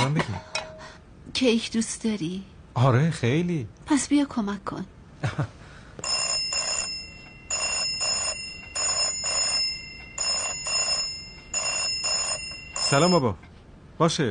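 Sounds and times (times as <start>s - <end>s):
speech: 1.4s - 6.2s, 12.9s - 14.2s
telephone ringing in a double-ring pattern: 6.0s - 13.4s.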